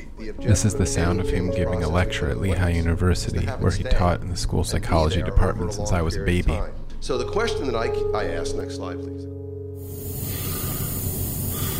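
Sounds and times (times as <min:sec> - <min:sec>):
speech: 0:00.2 - 0:09.4
dying man breathing on a hospice bed: 0:10.0 - 0:11.7.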